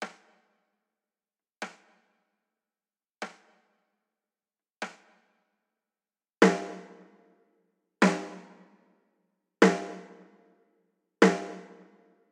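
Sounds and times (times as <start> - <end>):
snare drum: 0.0 - 0.5, 1.6 - 2.1, 3.2 - 3.7, 4.8 - 5.3, 6.4 - 7.1, 8.0 - 8.7, 9.6 - 10.3, 11.2 - 12.0.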